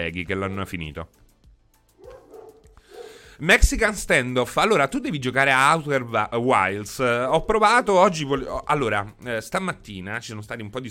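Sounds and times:
speech: 0.0s - 1.3s, 3.4s - 10.9s
neighbor's dog barking: 2.0s - 3.2s.

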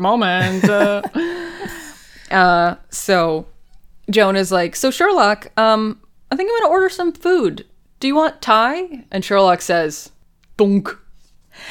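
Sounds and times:
speech: 0.0s - 1.4s, 2.3s - 3.5s, 4.1s - 11.0s
person vocally imitating a tennis ball hitting a back: 0.4s - 1.1s
laughter: 0.4s - 2.0s.

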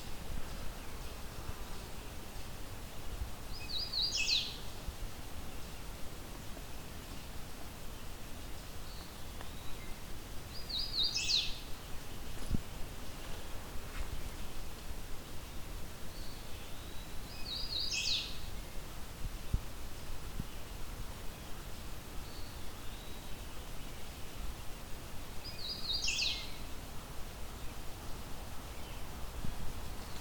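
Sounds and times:
outdoor wind: 0.0s - 30.1s
hooded warbler singing: 3.5s - 4.6s, 8.9s - 11.7s, 16.1s - 18.7s, 25.4s - 26.6s.

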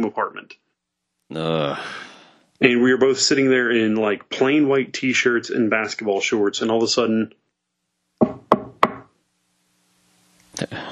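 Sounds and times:
speech: 1.3s - 7.4s
sharp knocks on a door: 8.2s - 9.1s.

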